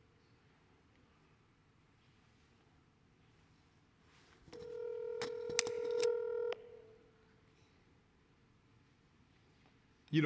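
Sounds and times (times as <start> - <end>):
telephone keypress clicks: 4.6 - 6.1
telephone dial tone: 4.6 - 6.9.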